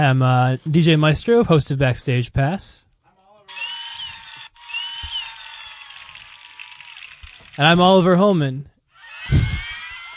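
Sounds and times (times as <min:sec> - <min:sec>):
speech: 0:00.0 - 0:02.8, 0:07.6 - 0:08.7
high-pitched crowded screaming: 0:03.5 - 0:07.5, 0:08.9 - 0:10.1.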